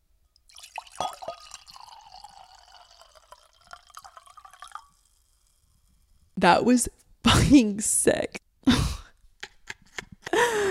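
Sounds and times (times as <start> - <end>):
drink pouring into a glass: 0.4 - 6.2
glass clinks: 0.6 - 2.8
speech: 6.4 - 8.4.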